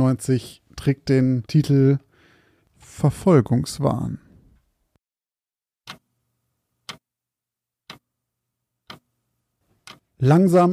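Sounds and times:
speech: 0:00.0 - 0:02.0, 0:02.9 - 0:04.2, 0:10.2 - 0:10.7
old wall clock ticking: 0:05.8 - 0:06.1, 0:06.8 - 0:07.1, 0:07.8 - 0:08.1, 0:08.8 - 0:09.2, 0:09.8 - 0:10.2.

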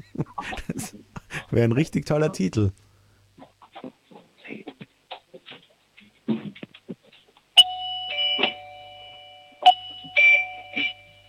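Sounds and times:
speech: 0:00.4 - 0:02.8
doorbell chiming: 0:07.6 - 0:11.2.

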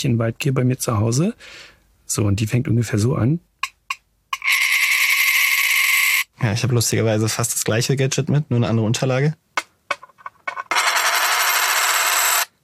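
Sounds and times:
speech: 0:00.0 - 0:03.5, 0:06.4 - 0:09.6
coin rolling on a small hand mirror imitating wood warbler song: 0:04.4 - 0:06.3, 0:09.9 - 0:12.5.

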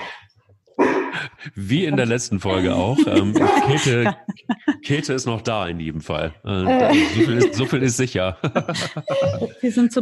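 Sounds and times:
laughter: 0:01.2 - 0:05.7, 0:06.5 - 0:09.8
speech: 0:01.2 - 0:10.0
dog whining with high thin whimper: 0:09.0 - 0:09.6.

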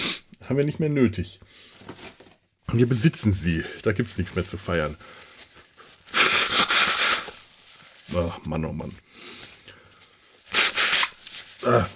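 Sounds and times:
nose blowing and sniffing: 0:00.0 - 0:00.3, 0:06.0 - 0:07.4, 0:10.5 - 0:11.4
speech: 0:00.5 - 0:02.0, 0:02.7 - 0:05.3, 0:08.1 - 0:09.1, 0:11.6 - 0:11.9.

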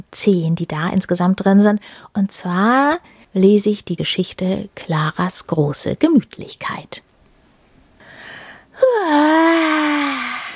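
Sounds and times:
speech: 0:00.0 - 0:07.1
person acting out a bored yawn: 0:08.8 - 0:10.5.

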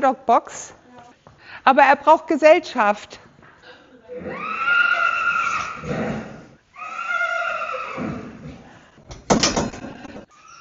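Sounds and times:
speech: 0:00.0 - 0:00.8, 0:01.6 - 0:03.3
horse neighing in a stable: 0:04.1 - 0:08.7.

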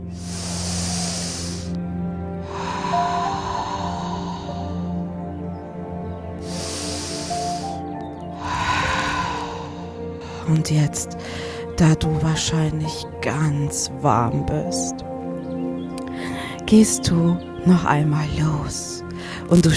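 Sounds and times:
slow deep breaths during a guided relaxation exercise: 0:00.0 - 0:11.8, 0:15.9 - 0:16.6, 0:19.1 - 0:19.5
soft sustained tonal background: 0:00.0 - 0:19.5
speech: 0:10.5 - 0:15.0, 0:16.7 - 0:19.7.

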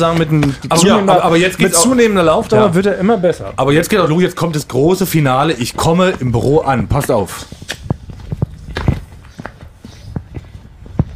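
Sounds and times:
speech: 0:00.0 - 0:07.8
footsteps: 0:00.0 - 0:11.1.

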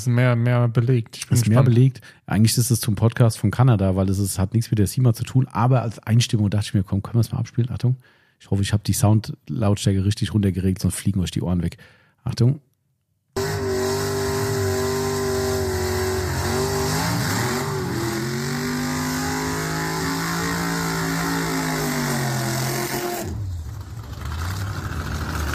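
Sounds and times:
speech: 0:00.0 - 0:12.7
dragster quarter-mile race car engine roaring during a burnout: 0:13.4 - 0:25.5.

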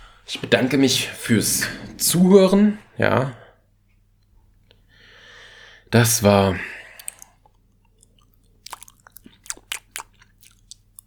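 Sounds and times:
speech: 0:00.3 - 0:03.4, 0:05.9 - 0:06.8
wet mouth smacking and chewing: 0:06.9 - 0:11.0.

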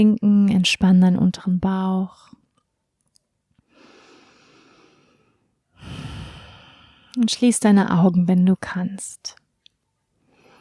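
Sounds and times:
speech: 0:00.0 - 0:02.4, 0:07.2 - 0:09.4
deep breath exhaled through open mouth during guided relaxation exercise: 0:03.7 - 0:07.2.

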